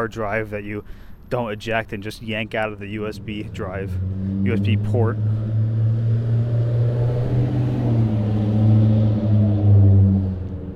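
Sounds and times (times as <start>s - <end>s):
speech: 0.0s - 5.4s
truck engine drone passing by: 0.0s - 10.7s.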